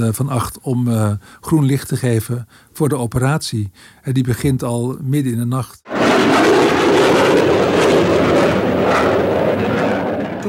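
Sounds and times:
speech: 0:00.0 - 0:07.4
low-flying fighter jets passing overhead: 0:05.9 - 0:10.4.

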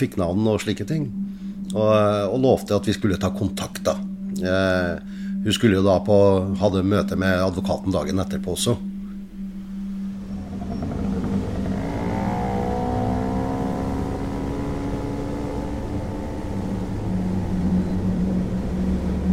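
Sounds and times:
speech: 0:00.0 - 0:08.9
moped engine revving while ridden on a cold autumn evening: 0:10.2 - 0:19.2.

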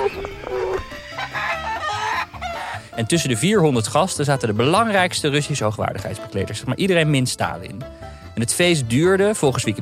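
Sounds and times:
roosters crowing at a party in a house and garden: 0:00.0 - 0:02.9
hens clucking: 0:00.0 - 0:03.0
speech: 0:03.0 - 0:09.8.

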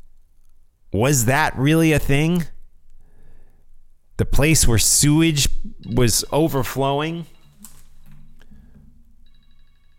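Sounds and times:
low steady hum: 0:00.0 - 0:09.9
speech: 0:00.9 - 0:02.5, 0:04.2 - 0:07.3
phone ringtone with pulsing electronic trill of stacked high tones: 0:05.7 - 0:07.6, 0:09.1 - 0:09.9.

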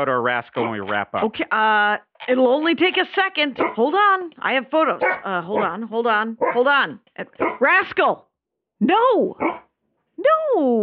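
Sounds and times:
speech: 0:00.0 - 0:09.6, 0:10.2 - 0:10.8
dog barking: 0:00.6 - 0:01.3, 0:03.6 - 0:03.8, 0:05.0 - 0:05.8, 0:06.4 - 0:06.8, 0:07.4 - 0:07.7, 0:09.4 - 0:09.7.

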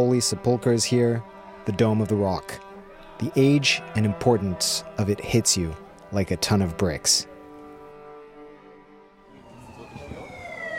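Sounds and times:
speech: 0:00.0 - 0:02.6, 0:03.2 - 0:07.3
low rumble of city traffic in Jerusalem: 0:07.8 - 0:10.7
ambulance siren wailing in the old city of Jerusalem: 0:09.2 - 0:10.7.

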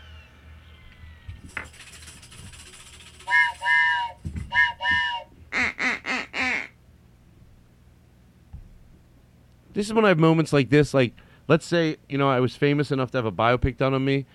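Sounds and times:
speech: 0:01.4 - 0:01.9, 0:09.8 - 0:14.3
duck whistle blown loud giving nasal quacks: 0:03.3 - 0:06.8.

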